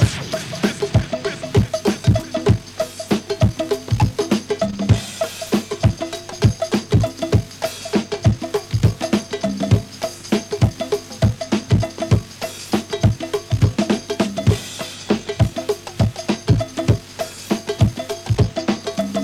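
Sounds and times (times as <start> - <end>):
go-go rhythm loop: 0.0 - 19.2.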